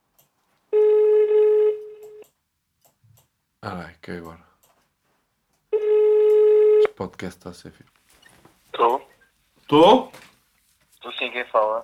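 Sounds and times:
steady telephone tone while a call is placed: 0.7 - 2.2, 5.7 - 6.9
speech: 3.6 - 4.5, 7.0 - 8.0, 9.7 - 10.3, 11.3 - 11.8.

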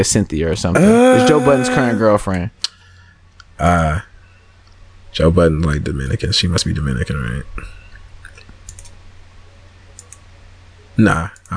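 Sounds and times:
speech: 0.0 - 2.7, 3.6 - 4.1, 5.2 - 7.8, 11.0 - 11.5
low steady hum: 0.0 - 11.5
sharp quick clicks of clicking through photos on a phone or computer: 8.3 - 9.0, 10.0 - 10.2.

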